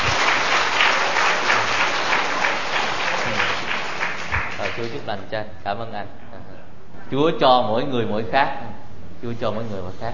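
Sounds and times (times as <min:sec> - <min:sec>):
sustained audience applause of thanksgiving: 0:00.0 - 0:05.1
speech: 0:04.8 - 0:06.3, 0:07.1 - 0:10.1.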